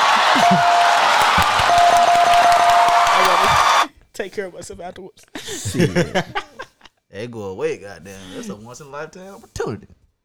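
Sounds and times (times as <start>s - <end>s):
large audience applauding: 0.0s - 3.9s
large audience cheering and shouting: 0.0s - 3.9s
laughter: 0.0s - 7.0s, 8.1s - 8.8s
speech: 0.4s - 0.7s, 4.2s - 6.5s, 7.1s - 10.0s.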